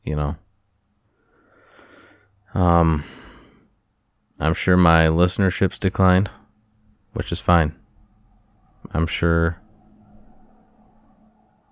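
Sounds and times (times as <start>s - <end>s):
speech: 0.1s - 0.4s, 2.5s - 3.2s, 4.4s - 6.4s, 7.1s - 7.8s, 8.9s - 9.6s
passing cars outside with engine drone: 6.3s - 11.7s.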